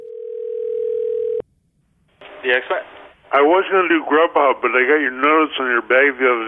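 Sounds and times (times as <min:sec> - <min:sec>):
telephone dial tone from a recorded phone call: 0:00.0 - 0:01.4
speech: 0:02.4 - 0:06.4.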